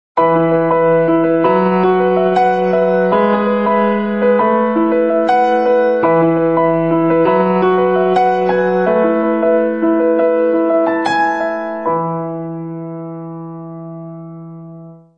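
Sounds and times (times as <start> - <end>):
piano playing recorded on iPhone: 0.2 - 15.1.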